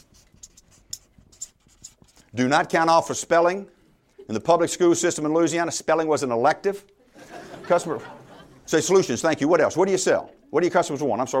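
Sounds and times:
writing scratching on a board: 0:00.0 - 0:02.4
speech: 0:02.4 - 0:06.9, 0:07.7 - 0:11.3
laughter: 0:07.0 - 0:09.3.

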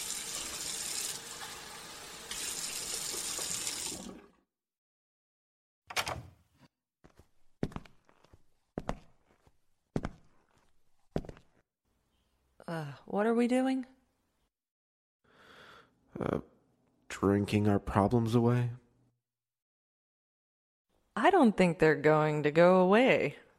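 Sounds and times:
faucet running water into a sink: 0:00.0 - 0:04.4
footsteps: 0:07.0 - 0:11.6
speech: 0:13.0 - 0:14.0, 0:17.2 - 0:18.8, 0:21.3 - 0:23.4.

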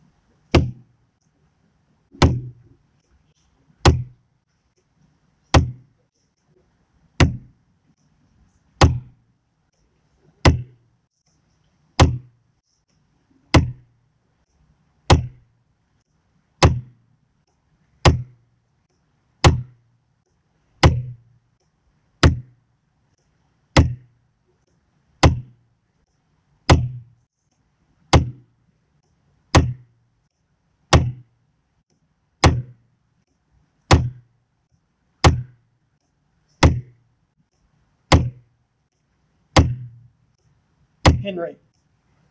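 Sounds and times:
loud sharp knocks: 0:00.6 - 0:00.8, 0:02.1 - 0:02.6, 0:03.8 - 0:04.2, 0:05.6 - 0:05.8, 0:07.2 - 0:07.5, 0:08.8 - 0:09.1, 0:10.4 - 0:10.7, 0:12.0 - 0:12.3, 0:15.1 - 0:15.4, 0:16.6 - 0:16.9, 0:19.4 - 0:19.7, 0:20.8 - 0:21.2, 0:22.2 - 0:22.5, 0:23.8 - 0:24.0, 0:25.2 - 0:25.5, 0:26.7 - 0:27.0, 0:28.1 - 0:28.4, 0:29.5 - 0:29.8, 0:30.9 - 0:31.2, 0:32.4 - 0:32.8, 0:33.9 - 0:34.2, 0:35.2 - 0:35.6, 0:36.6 - 0:36.9, 0:38.1 - 0:38.4, 0:39.6 - 0:40.0, 0:41.0 - 0:41.3
speech: 0:41.2 - 0:41.7.

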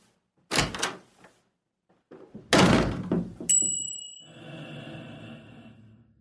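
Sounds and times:
house door slamming hard: 0:00.5 - 0:01.0, 0:02.4 - 0:03.6
thin high ringing tone: 0:03.5 - 0:04.6.

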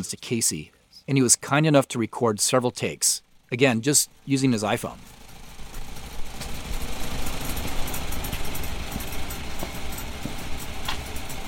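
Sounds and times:
speech: 0:00.0 - 0:05.2
old farm tractor engine running on a farm: 0:03.3 - 0:11.4.

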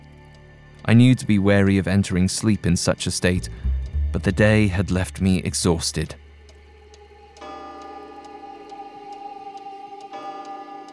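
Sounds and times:
speech: 0:00.9 - 0:06.2
hallway clock ticking: 0:01.9 - 0:10.9
hallway clock chiming midnight: 0:03.4 - 0:10.9.

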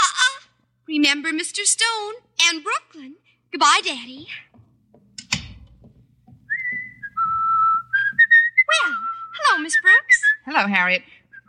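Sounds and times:
speech: 0:00.9 - 0:04.5, 0:09.6 - 0:11.2
person whistling a loud tune: 0:06.5 - 0:10.4.

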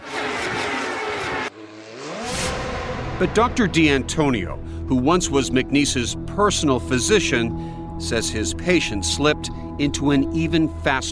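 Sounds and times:
race car engine revving: 0:00.0 - 0:04.7
speech: 0:03.2 - 0:11.1.

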